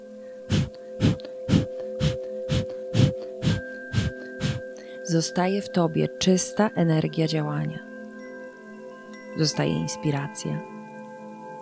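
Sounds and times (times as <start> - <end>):
soft sustained musical drone: 0.0 - 11.6
rapid forceful breaths of fire breathing: 0.4 - 5.0
speech: 5.1 - 7.9, 9.4 - 10.7.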